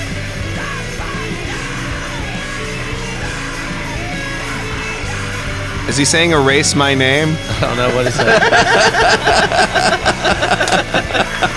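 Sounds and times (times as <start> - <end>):
distorted grunge rock track with heavy guitars and drums: 0.0 - 11.5
raw strained vocal yell: 0.4 - 6.0, 7.5 - 11.5
speech: 5.9 - 11.5
laughter: 7.4 - 11.5.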